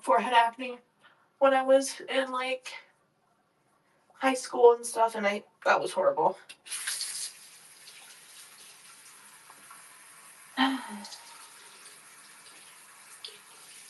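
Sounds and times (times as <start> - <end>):
speech: 0.0 - 2.8, 4.2 - 7.0, 10.6 - 11.2
brief louder splash or clatter: 6.7 - 8.7
water running from a sink tap: 6.7 - 13.8.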